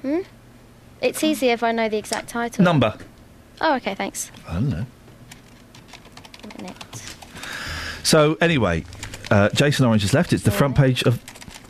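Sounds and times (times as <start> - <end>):
speech: 0.0 - 0.4, 1.0 - 5.0, 8.1 - 11.3
typing on a computer keyboard: 5.3 - 7.5, 8.8 - 10.2, 11.3 - 11.6.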